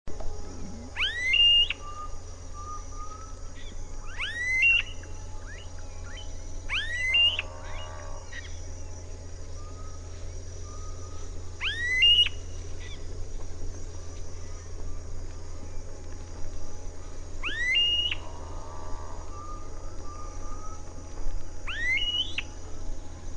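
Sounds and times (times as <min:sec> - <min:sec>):
faint low hum: 0:00.1 - 0:23.3
smooth-billed ani Crotophaga ani whistled calls: 0:00.6 - 0:08.5, 0:09.6 - 0:13.0, 0:17.4 - 0:18.3, 0:21.6 - 0:22.5.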